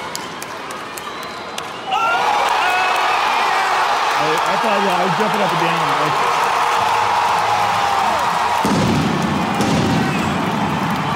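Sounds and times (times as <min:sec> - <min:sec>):
dense roar of a cheering crowd: 0:00.0 - 0:11.1
speech: 0:04.3 - 0:06.4
fireworks rumbling and crackling: 0:08.4 - 0:11.1.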